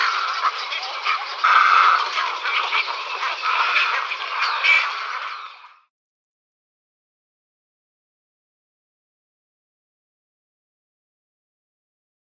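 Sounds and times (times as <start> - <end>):
cattle egret calling in harsh croaking chatter: 0.0 - 5.8.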